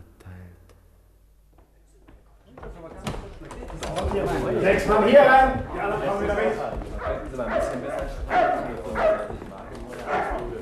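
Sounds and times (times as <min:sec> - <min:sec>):
speech: 0:04.0 - 0:09.2
large dog barking outside a door: 0:07.0 - 0:09.4, 0:10.0 - 0:10.6.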